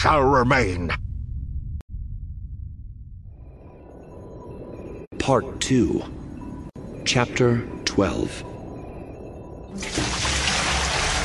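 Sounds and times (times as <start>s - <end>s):
speech: 0.0s - 1.1s, 5.3s - 6.2s, 7.0s - 8.5s, 9.8s - 10.2s
water gushing and splashing: 9.8s - 11.2s.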